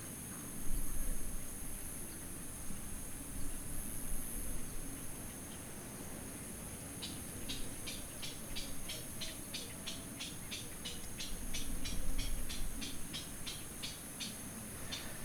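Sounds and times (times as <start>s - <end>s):
constant hiss of wind or surf: 0.0s - 15.2s
crickets chirping in grass: 0.1s - 15.2s.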